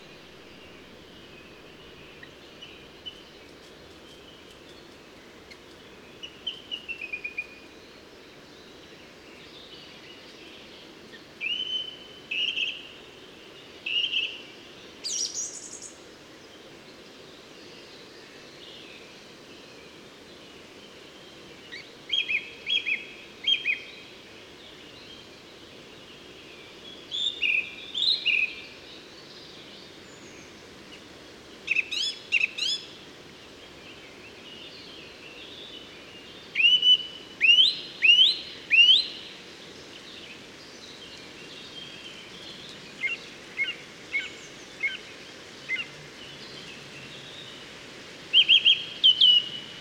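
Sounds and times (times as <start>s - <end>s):
song thrush in Moos: 0.0s - 49.7s.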